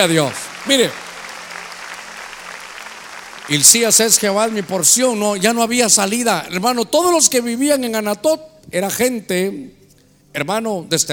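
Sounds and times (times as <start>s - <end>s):
speech: 0.0s - 1.0s, 3.5s - 11.1s
applause from a large gathering: 0.0s - 6.1s.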